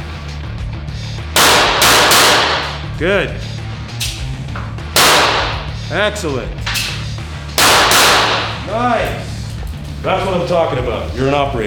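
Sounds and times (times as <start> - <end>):
gunshots from a secondary weapon in a tactical shooter video game: 1.4 - 2.9, 4.9 - 5.8, 7.6 - 8.7
speech: 3.0 - 3.5, 5.9 - 6.6, 8.7 - 9.3, 10.0 - 11.6.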